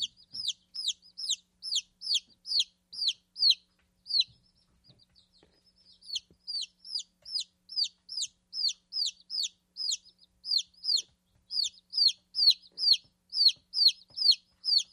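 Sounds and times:
chicken peeping: 0.0s - 14.9s.

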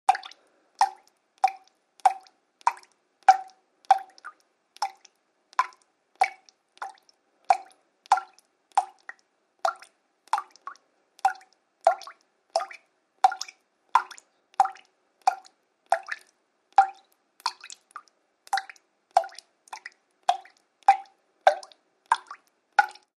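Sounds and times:
fast irregular water drips: 0.1s - 23.1s.

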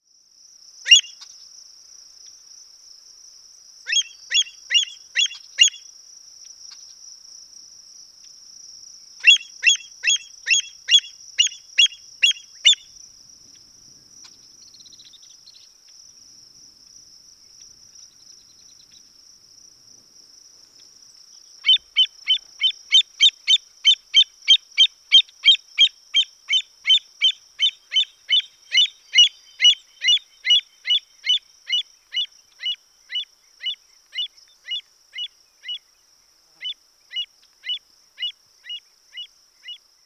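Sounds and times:
Western avocet calls: 0.9s - 1.3s, 3.9s - 5.8s, 9.2s - 13.0s, 21.6s - 35.9s, 36.6s - 39.8s.

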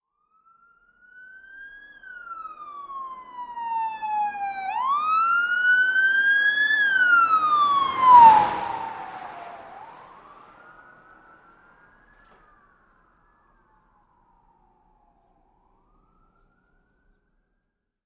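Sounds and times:
police siren of various types: 0.0s - 17.7s
fast car passing by: 4.9s - 12.7s
car engine noise: 6.2s - 12.5s.

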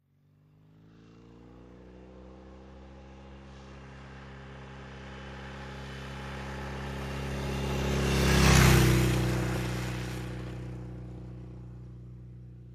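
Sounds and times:
Norton motorcycle accelerating: 0.1s - 12.7s.

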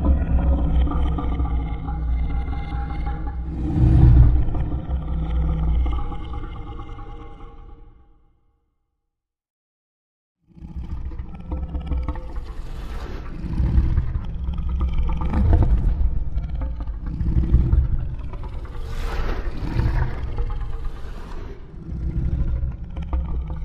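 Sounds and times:
lion roaring: 0.0s - 7.9s, 13.3s - 23.6s.

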